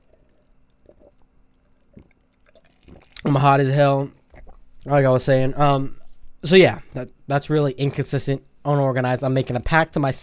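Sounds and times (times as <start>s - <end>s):
gulping: 0.0s - 3.4s
slurping sips of water: 0.0s - 3.5s, 4.2s - 4.9s
speech: 3.2s - 4.2s, 4.8s - 10.2s.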